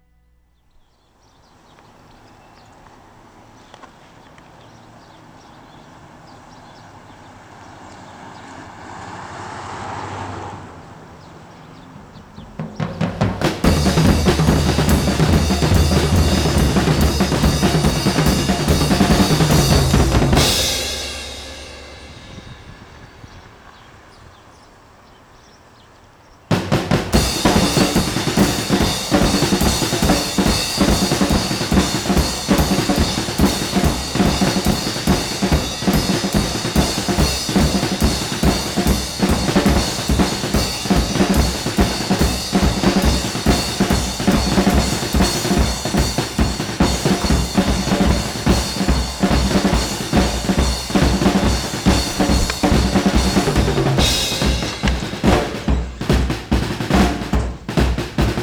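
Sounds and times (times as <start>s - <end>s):
birds: 0.0s - 58.4s
drums: 11.2s - 24.8s, 26.4s - 58.4s.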